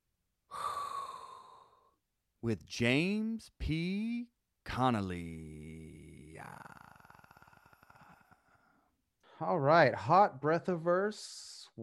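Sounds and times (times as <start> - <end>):
person inhaling a long breath: 0.5 - 1.9
speech: 2.4 - 6.8, 9.4 - 11.8.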